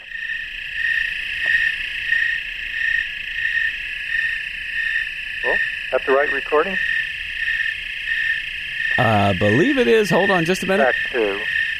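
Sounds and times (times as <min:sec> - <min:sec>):
dense insect chorus in a goldenrod meadow: 0:00.0 - 0:11.7
faint rhythmic pulsing: 0:00.0 - 0:11.7
speech: 0:05.5 - 0:07.0, 0:09.0 - 0:11.6.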